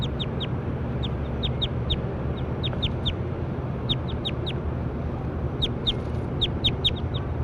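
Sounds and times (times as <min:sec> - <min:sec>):
short high bird chirps: 0:00.0 - 0:03.2, 0:03.8 - 0:04.6, 0:05.6 - 0:07.3.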